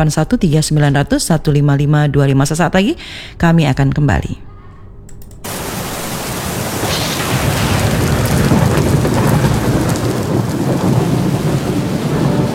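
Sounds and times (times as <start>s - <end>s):
speech: 0.0s - 4.5s
heavy rain: 5.4s - 12.5s
deep rolling thunder: 5.5s - 12.5s.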